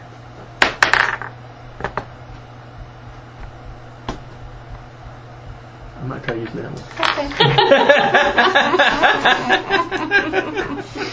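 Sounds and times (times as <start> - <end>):
steady low hum: 0.0 - 10.7
dice clattering across a hard tabletop: 0.6 - 1.3
speech: 6.0 - 11.1
laughter: 7.2 - 11.1.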